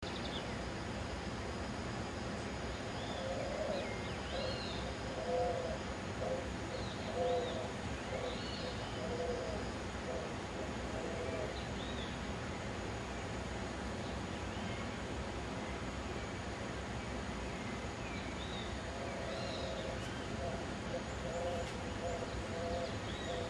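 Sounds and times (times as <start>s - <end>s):
steady background hiss: 0.0s - 23.4s
spot-winged pigeon song of low soft cooing notes: 3.2s - 6.5s, 7.1s - 11.6s, 19.0s - 23.4s.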